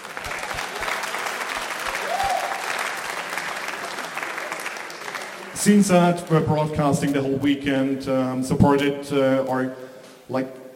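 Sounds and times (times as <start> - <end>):
audience applauding at a slide presentation: 0.0 - 6.7
speech: 5.6 - 10.6.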